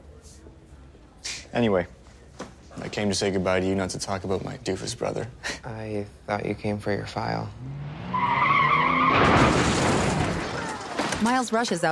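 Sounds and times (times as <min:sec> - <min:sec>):
speech: 0:01.6 - 0:02.0, 0:02.9 - 0:07.8, 0:11.2 - 0:11.9
car tires squealing: 0:07.7 - 0:09.6
car crash: 0:07.8 - 0:11.5.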